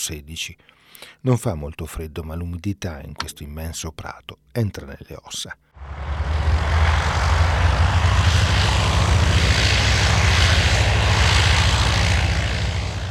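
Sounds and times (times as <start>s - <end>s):
speech: 0.0s - 6.7s
WWI monoplane propeller aircraft engines roaring: 5.8s - 13.0s.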